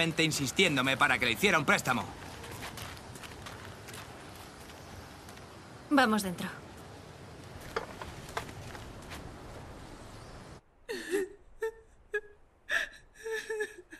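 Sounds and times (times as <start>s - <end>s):
speech: 0.0s - 2.3s, 5.9s - 6.6s
woman crying in gasping, whimpering sobs: 10.8s - 13.9s.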